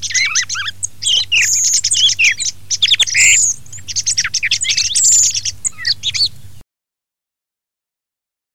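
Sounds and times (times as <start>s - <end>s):
thrush singing whistles, chatters and squawky notes: 0.0s - 6.6s.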